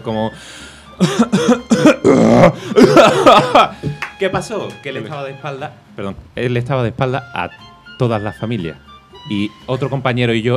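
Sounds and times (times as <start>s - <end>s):
speech: 0.0s - 10.5s
laughter: 1.0s - 3.9s
person imitating a powerful burp masked by forced coughs: 1.7s - 2.6s.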